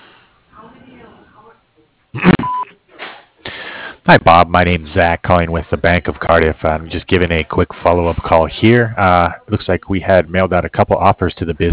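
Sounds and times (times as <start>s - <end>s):
voicemail beep on a business answering line: 2.2s - 2.7s
speech: 4.1s - 11.7s.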